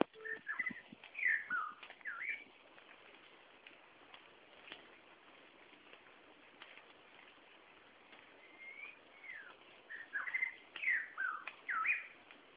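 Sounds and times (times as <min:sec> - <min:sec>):
shama song of rich varied whistled phrases: 0:00.2 - 0:02.4, 0:08.4 - 0:12.1.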